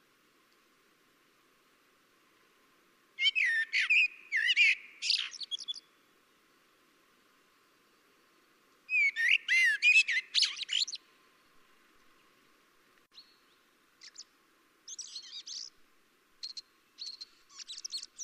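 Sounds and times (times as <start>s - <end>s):
common blackbird (Turdus merula) chirping: 3.2s - 6.0s, 8.9s - 11.0s, 13.1s - 14.3s, 14.9s - 15.8s, 16.4s - 18.2s.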